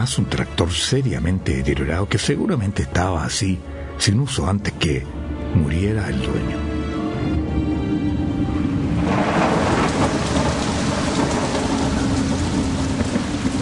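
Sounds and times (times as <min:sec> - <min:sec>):
speech: 0:00.0 - 0:08.0
heavy rain: 0:07.1 - 0:13.6
low rumbling thunder: 0:07.1 - 0:13.6.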